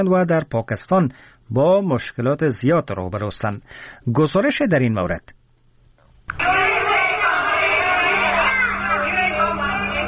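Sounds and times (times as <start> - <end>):
speech: 0.0 - 5.4, 6.3 - 6.6
tens of thousands of refugee children chanting in protest in an enclosed place: 6.4 - 10.0.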